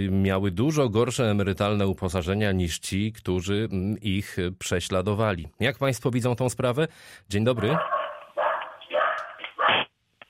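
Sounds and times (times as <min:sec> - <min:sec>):
speech: 0:00.0 - 0:08.0
dog barking over a telephone line: 0:07.6 - 0:09.9.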